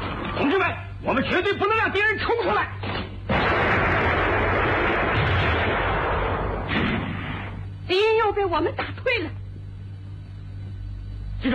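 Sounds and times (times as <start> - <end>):
speech: 0.4 - 3.0, 7.9 - 9.4
gunfire and explosions in a battle: 3.3 - 7.6.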